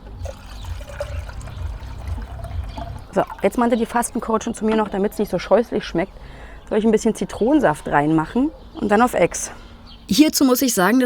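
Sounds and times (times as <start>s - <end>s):
cold water pouring into a container: 0.0s - 4.2s
speech: 3.2s - 11.0s.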